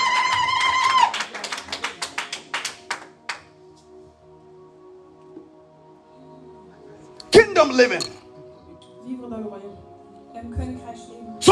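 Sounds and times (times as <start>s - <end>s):
crowd at a worship service clapping along: 0.0s - 3.6s
speech: 7.6s - 8.2s.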